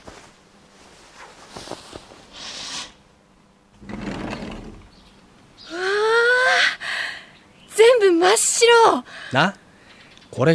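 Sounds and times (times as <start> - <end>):
faint hiss: 0.0 - 10.5
window being slid open: 3.8 - 5.0
speech: 8.6 - 9.6.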